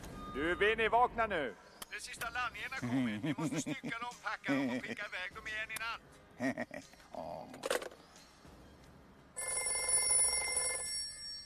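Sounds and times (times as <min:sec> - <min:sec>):
speech: 0:00.4 - 0:08.0
laughter: 0:02.8 - 0:05.0, 0:06.4 - 0:06.9
telephone bell ringing: 0:09.4 - 0:11.4.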